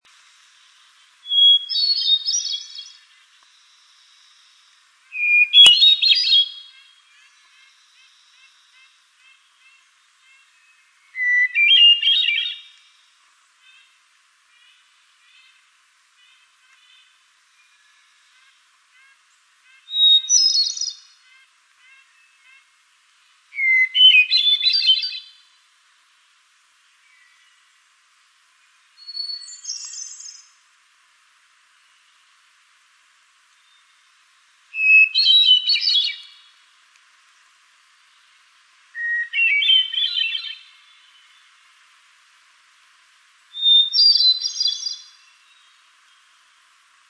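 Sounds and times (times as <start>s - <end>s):
Hermit Thrush singing: 0.6s - 22.7s, 23.3s - 25.6s, 26.9s - 30.6s, 33.5s - 36.6s, 37.4s - 41.6s, 43.5s - 46.4s.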